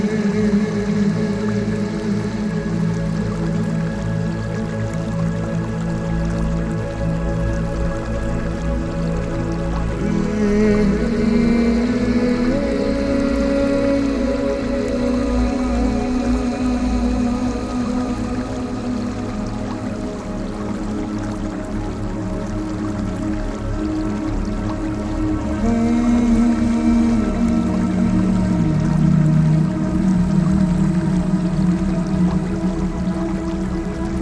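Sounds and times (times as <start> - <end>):
bamboo water fountain trickling: 0.0 - 34.2
soft sustained relaxation music: 0.0 - 34.2.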